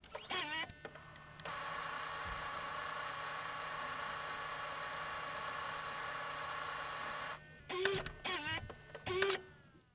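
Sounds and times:
Panasonic DVX100 camcorder rewinding the tape: 0.1s - 9.6s.

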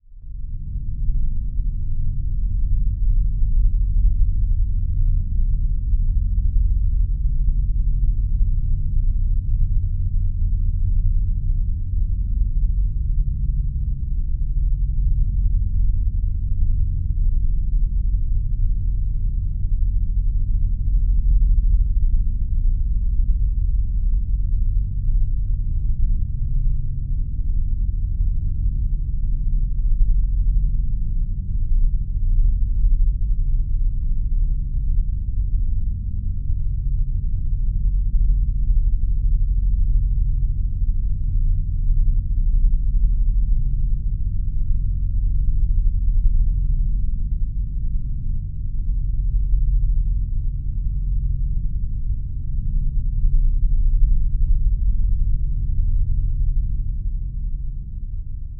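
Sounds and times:
deep mellow rich bass drone: 0.0s - 58.5s.

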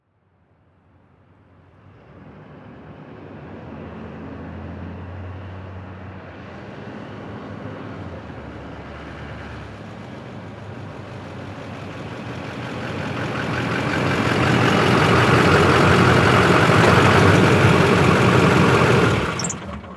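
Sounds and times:
diesel truck engine starting up and shutting off: 8.3s - 19.9s.

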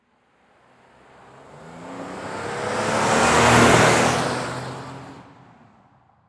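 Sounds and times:
Jeep Commander driving by fast: 1.0s - 5.5s.

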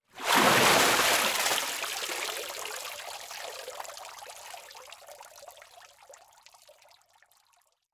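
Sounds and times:
liquid water splash: 0.2s - 2.1s.

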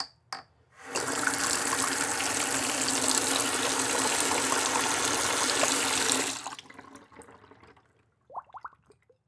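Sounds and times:
bathroom sink faucet turned on high and shut off: 0.8s - 7.9s.

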